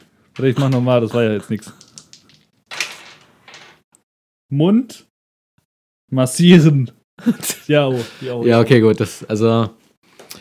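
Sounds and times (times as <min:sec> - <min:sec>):
speech: 0:00.4 - 0:01.8, 0:04.5 - 0:05.1, 0:06.1 - 0:09.8
dice being rolled across a surface: 0:01.8 - 0:03.8
laughter: 0:07.2 - 0:08.3.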